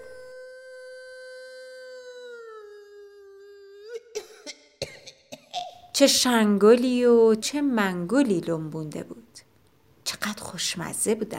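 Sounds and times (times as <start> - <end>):
person imitating a wolf howl: 0.0 - 4.2
speech: 6.0 - 9.4, 10.6 - 11.3.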